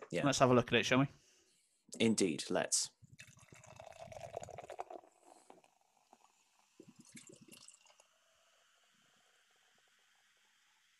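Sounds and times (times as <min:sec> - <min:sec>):
speech: 0:00.1 - 0:01.2, 0:01.9 - 0:03.0
beer fizzing and bubbly sloshing in a glass: 0:03.2 - 0:08.0
beer glugging into a glass: 0:03.2 - 0:08.0.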